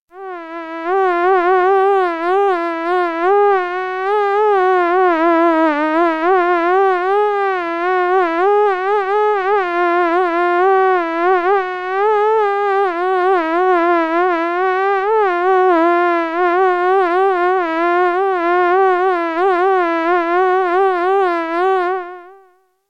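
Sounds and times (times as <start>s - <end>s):
mosquito buzzing: 0.1s - 22.8s.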